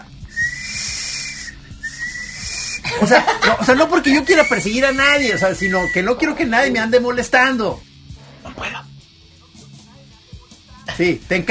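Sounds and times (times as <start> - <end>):
sweet potato cart steam whistle blasts: 0.3 - 2.8
laughter: 2.8 - 4.6
speech: 3.0 - 7.9, 11.0 - 11.4.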